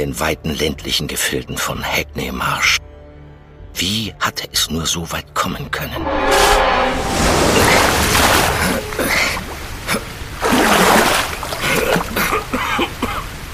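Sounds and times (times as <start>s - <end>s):
speech: 0.0s - 2.9s, 3.8s - 9.3s
canal water gushing and splashing into a chamber: 6.9s - 13.5s.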